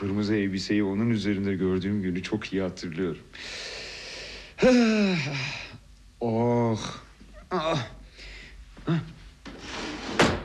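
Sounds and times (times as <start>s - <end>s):
speech: 0.0s - 3.8s, 4.6s - 5.6s, 6.2s - 8.0s, 8.8s - 9.2s
bedroom underwear drawer sliding open with a knock: 9.5s - 10.4s.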